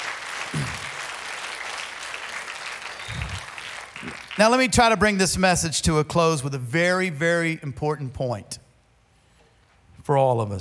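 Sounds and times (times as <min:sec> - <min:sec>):
congregation applauding: 0:00.0 - 0:05.2
speech: 0:04.4 - 0:08.6, 0:10.1 - 0:10.5.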